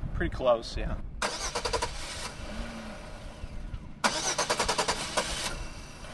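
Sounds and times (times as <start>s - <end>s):
speech: 0.2s - 1.1s
car engine cranking without starting: 1.2s - 6.1s.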